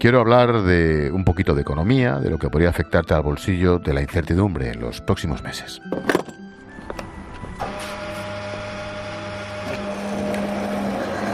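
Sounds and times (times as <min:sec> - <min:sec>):
speech: 0:00.0 - 0:06.2
petrol pump humming while filling a car at a filling station: 0:06.0 - 0:11.3.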